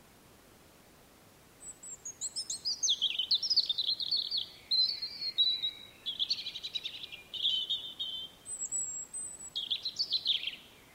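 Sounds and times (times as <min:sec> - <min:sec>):
European robin giving high thin whistles and liquid trills: 0:01.6 - 0:10.6.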